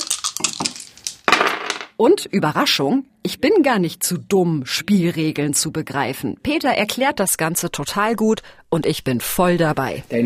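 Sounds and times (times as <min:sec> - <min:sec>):
black dice clattering across a hard tabletop: 0:00.0 - 0:01.9
speech: 0:02.0 - 0:10.2.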